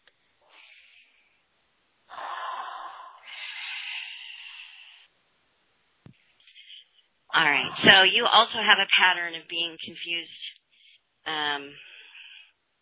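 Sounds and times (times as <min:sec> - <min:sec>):
soft breathing: 0:00.2 - 0:01.5, 0:02.1 - 0:05.2, 0:06.1 - 0:07.2, 0:10.6 - 0:11.2, 0:11.8 - 0:12.6
deep breath: 0:00.4 - 0:01.5, 0:02.1 - 0:05.1, 0:06.2 - 0:07.1, 0:11.8 - 0:12.6
speech: 0:07.4 - 0:10.5, 0:11.2 - 0:11.9.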